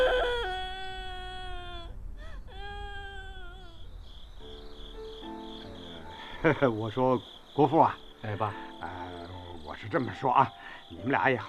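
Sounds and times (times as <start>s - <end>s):
baby boy crying in drawn-out wails: 0.0s - 4.6s
speech: 6.4s - 9.0s, 9.8s - 11.4s.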